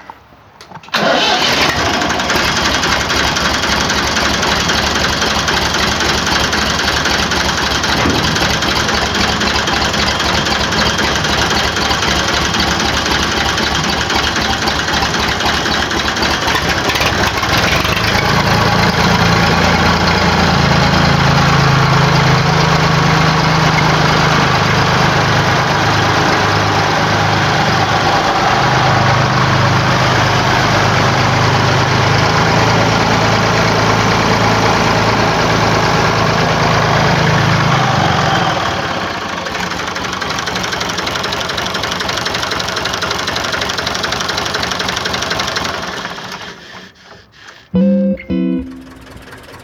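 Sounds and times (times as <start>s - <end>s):
Eicher tractor diesel engine starting and idling: 0.0s - 49.6s.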